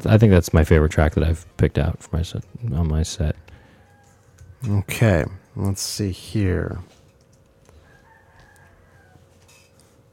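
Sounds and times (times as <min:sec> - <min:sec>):
speech: 0:00.0 - 0:03.5, 0:04.6 - 0:07.0
steady low hum: 0:00.0 - 0:10.1
rooster crowing: 0:03.2 - 0:05.5, 0:07.7 - 0:09.9.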